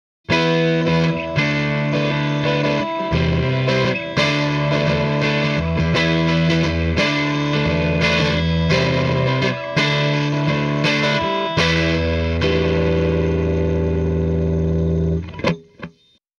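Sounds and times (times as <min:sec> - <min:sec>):
electric guitar on neck pickup without distortion: 0:00.3 - 0:16.2.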